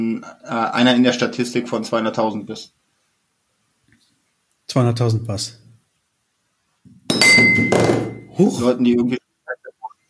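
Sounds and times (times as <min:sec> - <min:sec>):
speech: 0:00.0 - 0:02.8, 0:04.7 - 0:05.6, 0:07.1 - 0:09.2
glass stopper of a whisky bottle falling and clinking: 0:07.0 - 0:08.4.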